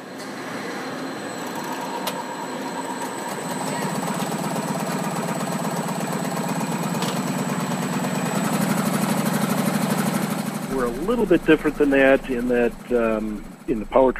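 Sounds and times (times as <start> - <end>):
faint whine above motorcycle engine: 0.0 - 14.1
motorcycle engine running during factory testing: 3.6 - 14.1
speech: 11.1 - 14.1.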